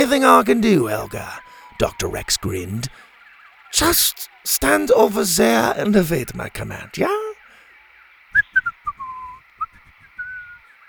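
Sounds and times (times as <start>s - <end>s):
speech: 0.0s - 3.0s, 3.7s - 7.3s
faint hiss: 0.0s - 10.8s
person whistling a short bouncy tune: 8.4s - 10.6s.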